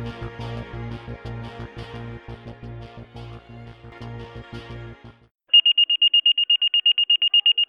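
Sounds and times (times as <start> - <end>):
high-pitched electronic fire station dispatch alert tone: 5.5 - 7.6.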